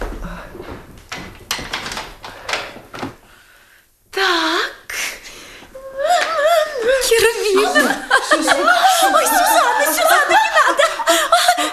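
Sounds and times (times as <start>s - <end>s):
door being closed with clunks, scraping rattles and latch thump: 0.0s - 3.2s
laughter: 5.8s - 11.7s.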